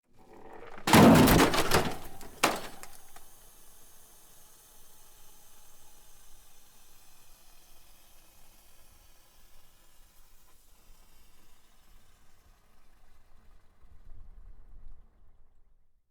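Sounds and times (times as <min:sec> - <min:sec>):
crash: 0:00.2 - 0:03.2
hiss: 0:03.0 - 0:14.2.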